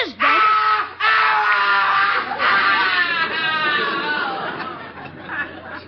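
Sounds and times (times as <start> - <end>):
human scream from a cellar: 0.2 - 4.3
laughter: 0.2 - 5.8.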